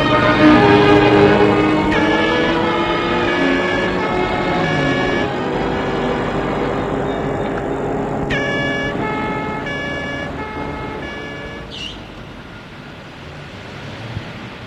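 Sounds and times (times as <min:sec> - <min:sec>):
police car siren: 0:00.0 - 0:13.4
steady rumble of street traffic: 0:00.0 - 0:14.6.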